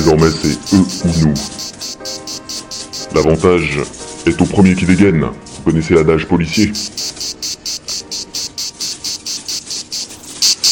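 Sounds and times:
cicadas chirring: 0:00.0 - 0:03.4, 0:06.6 - 0:10.6
speech: 0:00.1 - 0:02.4, 0:03.1 - 0:07.6.

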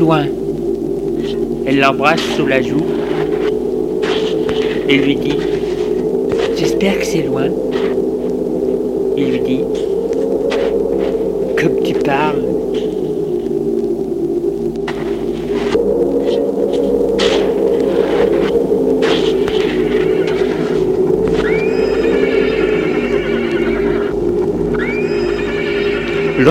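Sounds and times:
speech: 0:00.0 - 0:00.4, 0:01.2 - 0:03.0, 0:04.9 - 0:05.6, 0:06.6 - 0:07.8, 0:09.2 - 0:09.9, 0:12.0 - 0:12.5
steady low hum: 0:00.0 - 0:26.4
horses whinnying and neighing in a stable: 0:19.1 - 0:26.4.

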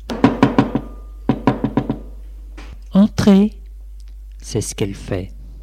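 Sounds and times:
firm knocking on a door: 0:00.1 - 0:02.1
speech: 0:03.0 - 0:03.6, 0:04.4 - 0:05.4.

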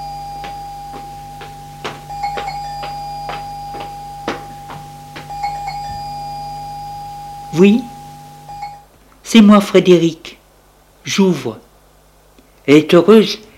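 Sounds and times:
electronic doorbell chimes at a gate: 0:00.0 - 0:08.8
steady high hum: 0:00.0 - 0:13.5
speech: 0:07.6 - 0:07.9, 0:09.3 - 0:10.3, 0:11.1 - 0:11.7, 0:12.7 - 0:13.5.

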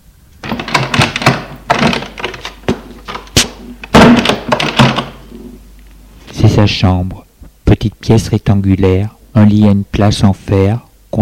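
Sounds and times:
clicks of the door handle and latch: 0:00.4 - 0:05.2
solid wooden thunks: 0:00.4 - 0:05.5
door being opened: 0:00.4 - 0:05.6
speech: 0:06.7 - 0:07.2, 0:07.8 - 0:11.1.

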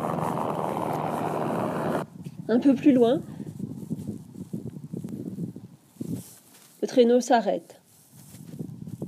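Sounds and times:
helicopter flying overhead with rotor and engine roar: 0:00.0 - 0:02.0
speech: 0:02.5 - 0:03.3, 0:07.0 - 0:07.8.

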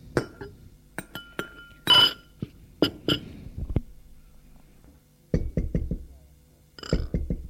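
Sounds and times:
light clinks of cups and glassware: 0:00.2 - 0:03.4, 0:06.8 - 0:07.3
firm knocking on a door: 0:05.3 - 0:06.0, 0:07.1 - 0:07.4.

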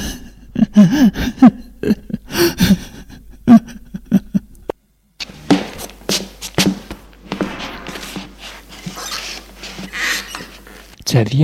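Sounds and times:
person sobbing with gasping shaky breaths and whimpers: 0:00.0 - 0:04.7
speech: 0:00.8 - 0:02.8, 0:11.1 - 0:11.4.

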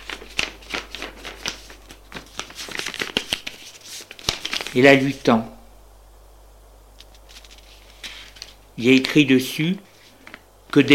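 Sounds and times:
sheet of paper from a schoolbag being handled and folded in four: 0:00.0 - 0:05.1, 0:07.0 - 0:09.2
speech: 0:04.7 - 0:05.6, 0:08.8 - 0:09.9, 0:10.8 - 0:10.9.

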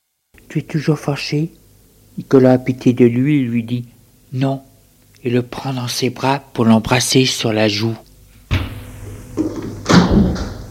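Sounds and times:
speech: 0:00.5 - 0:01.6, 0:02.2 - 0:08.0
door opening with dull thuds and clunks: 0:08.5 - 0:08.8, 0:09.4 - 0:10.6.

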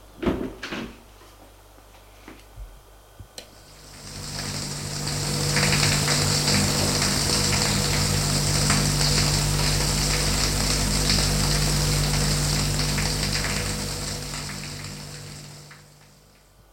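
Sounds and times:
shower water spraying: 0:03.5 - 0:16.5.

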